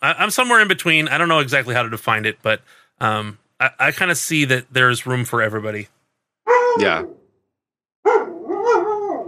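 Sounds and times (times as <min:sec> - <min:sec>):
speech: 0:00.0 - 0:06.0, 0:06.8 - 0:07.2
dog barking: 0:08.1 - 0:09.2.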